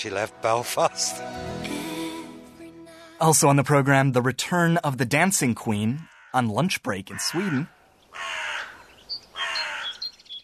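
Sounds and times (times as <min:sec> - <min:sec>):
speech: 0:00.0 - 0:01.7, 0:03.2 - 0:08.4
crow cawing: 0:06.0 - 0:06.4, 0:07.1 - 0:10.2.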